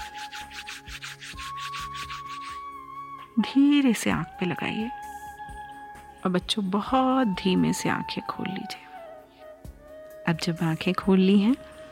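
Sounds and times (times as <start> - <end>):
hands rubbing together during a guided exercise for children: 0.0 - 2.6
speech: 3.4 - 5.0, 6.2 - 8.8, 10.3 - 11.7.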